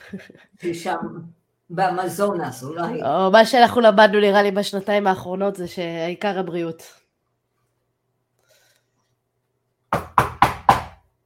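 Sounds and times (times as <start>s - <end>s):
speech: 0.1s - 7.0s, 9.9s - 10.4s
knocking: 9.9s - 11.0s.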